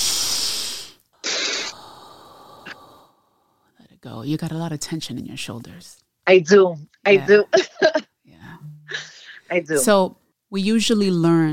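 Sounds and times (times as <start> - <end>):
long breathy deep inhale: 0.0 - 3.8, 8.9 - 9.5
speech: 4.1 - 7.9, 9.5 - 11.5
laughter: 7.2 - 8.0.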